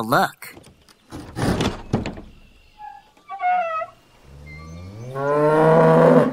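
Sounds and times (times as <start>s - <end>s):
speech: 0.0s - 0.7s
thumping knocks: 0.5s - 2.4s
brief higher animal call: 2.7s - 6.3s
cow mooing in a barn: 4.7s - 6.3s.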